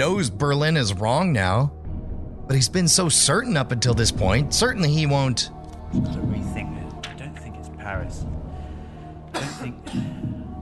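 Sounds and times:
speech: 0.0s - 1.8s, 2.5s - 6.3s
sharp coughs: 9.3s - 10.3s.

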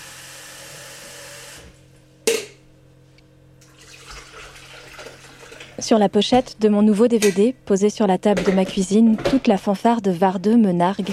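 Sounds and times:
water running from a tap while making coffee at home: 3.6s - 5.8s
kitchen sounds: 3.6s - 11.1s
speech: 5.8s - 11.1s.

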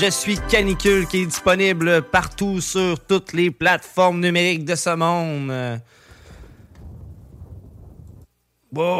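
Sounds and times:
speech: 0.0s - 6.0s, 8.7s - 8.9s
thunder clap rumbling: 6.3s - 8.3s.

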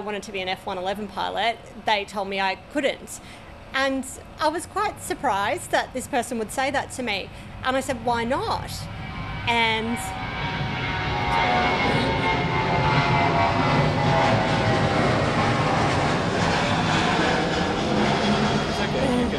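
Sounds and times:
speech: 0.0s - 10.2s, 11.3s - 12.1s
departing Virgin Boeing 737 jet engine roar: 6.2s - 19.3s.

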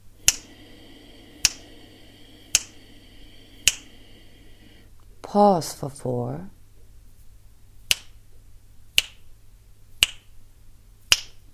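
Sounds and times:
finger snaps keeping time: 0.2s - 4.8s, 7.9s - 8.2s, 9.0s - 9.3s, 10.0s - 10.4s, 11.1s - 11.5s
speech: 5.3s - 6.6s.

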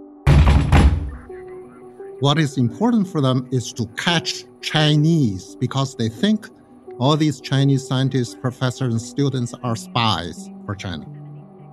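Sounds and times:
heavy booming knocks on a door: 0.3s - 1.3s
low sustained musical drone: 1.1s - 11.7s
speech: 2.2s - 11.2s.

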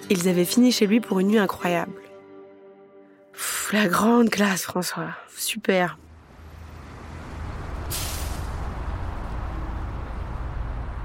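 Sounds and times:
speech: 0.1s - 2.1s, 3.4s - 6.0s
city bus engine idling: 6.0s - 11.0s
city bus air brakes hissing: 7.8s - 8.7s.

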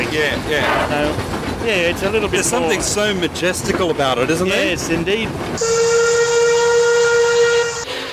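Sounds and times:
speech: 0.1s - 6.1s
steam locomotive whistle blowing: 5.6s - 8.1s.

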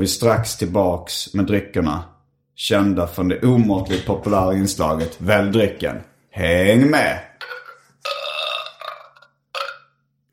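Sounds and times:
speech: 0.0s - 7.3s
person belching: 7.4s - 10.1s.

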